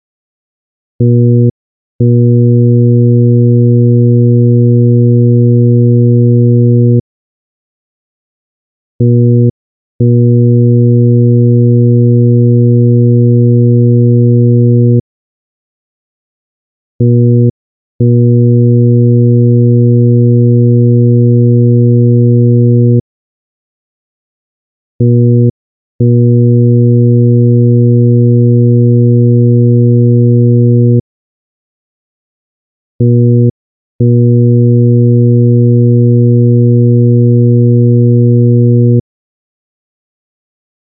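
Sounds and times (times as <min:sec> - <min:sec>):
120Hz tone: 0:01.0 - 0:07.0, 0:09.0 - 0:15.0, 0:17.0 - 0:23.0, 0:25.0 - 0:31.0, 0:33.0 - 0:39.0.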